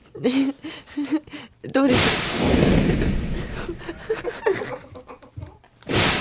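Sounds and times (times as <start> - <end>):
speech: 0.2 - 0.6
explosion sound effect: 1.9 - 4.3, 5.9 - 6.1
laughter: 3.4 - 5.6.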